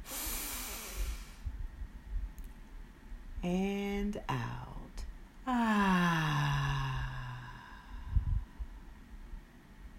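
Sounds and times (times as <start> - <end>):
deep inhaled breath during a guided breathing exercise: 0.0 - 1.5, 6.2 - 8.7
speech: 3.4 - 4.6.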